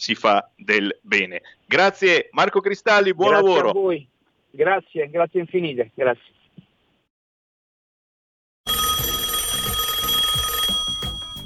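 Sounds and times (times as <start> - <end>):
speech: 0.0 - 6.4
telephone ringing with a pulsing trill: 8.7 - 11.4.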